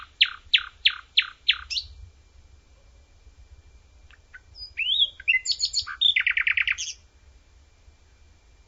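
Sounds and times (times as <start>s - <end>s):
common nightingale singing outdoors: 0.0s - 2.0s, 4.0s - 7.1s.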